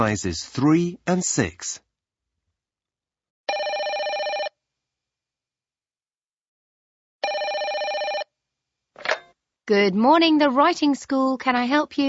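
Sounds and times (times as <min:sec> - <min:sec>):
speech: 0:00.0 - 0:01.8, 0:09.7 - 0:12.0
telephone ringing: 0:03.5 - 0:04.6, 0:07.2 - 0:08.3.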